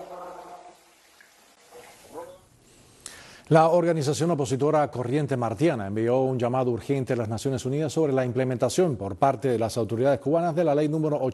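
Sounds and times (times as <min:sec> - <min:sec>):
drinking water running: 0:00.0 - 0:02.8
speech: 0:03.5 - 0:11.3.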